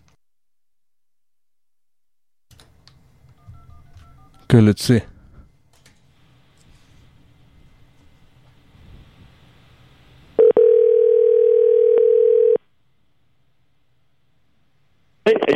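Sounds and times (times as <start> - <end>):
telephone keypad tones while redialing a call: 3.4 - 4.6, 10.4 - 12.6
speech: 4.5 - 5.1
loud steady telephone dial tone: 10.4 - 12.6.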